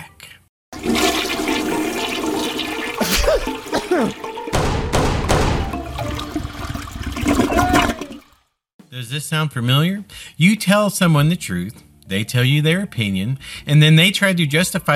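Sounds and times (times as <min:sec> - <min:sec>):
toilet flushing: 0:00.7 - 0:04.6, 0:05.6 - 0:08.5
speech: 0:03.3 - 0:04.3, 0:09.0 - 0:14.9.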